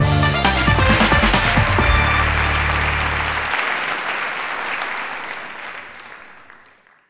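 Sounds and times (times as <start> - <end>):
musical sting: 0.0 - 3.5
applause: 0.6 - 7.0.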